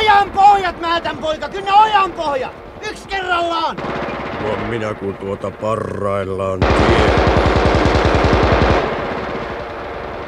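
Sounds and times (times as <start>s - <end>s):
dull rumbling echo of gunfire: 0.0s - 10.2s
speech: 0.2s - 8.7s
rapid automatic gunfire: 3.8s - 5.6s, 6.6s - 10.2s.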